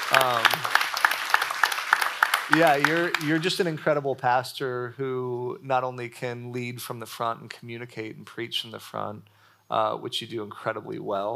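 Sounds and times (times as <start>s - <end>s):
audience applause: 0.0s - 3.8s
speech: 0.1s - 0.7s, 2.5s - 11.3s.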